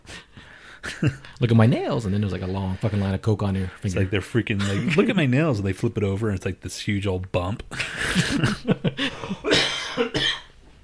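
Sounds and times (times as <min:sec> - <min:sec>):
speech: 0:01.0 - 0:09.1
person coughing harshly: 0:04.6 - 0:05.1, 0:09.2 - 0:10.6
laughter: 0:07.7 - 0:09.5.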